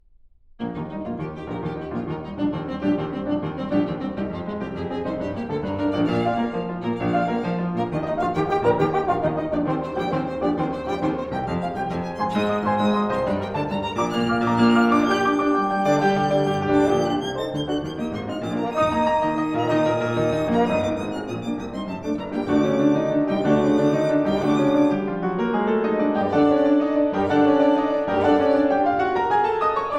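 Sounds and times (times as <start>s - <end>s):
trio for piano violin and horn: 0.6s - 29.9s.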